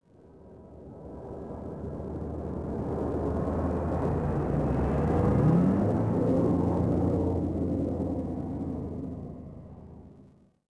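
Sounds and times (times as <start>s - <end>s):
skyhopper aircraft passing by: 0.4s - 10.3s.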